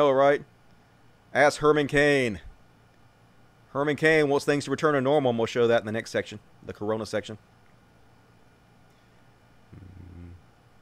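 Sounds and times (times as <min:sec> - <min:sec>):
speech: 0:00.0 - 0:00.5, 0:01.3 - 0:02.5, 0:03.7 - 0:07.5
cats purring while lying around resting: 0:09.8 - 0:10.4.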